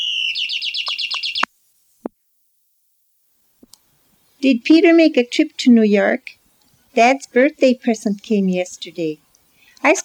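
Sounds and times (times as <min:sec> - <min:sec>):
electric plug-in toy bird singing a rapid warble: 0:00.0 - 0:01.5
speech: 0:04.4 - 0:06.4, 0:07.0 - 0:09.2, 0:09.8 - 0:10.0.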